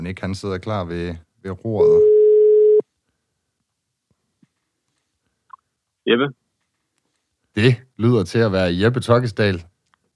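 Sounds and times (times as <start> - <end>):
speech: 0.0 - 2.2, 6.1 - 6.4, 7.6 - 9.7
telephone ringing tone: 2.0 - 2.8.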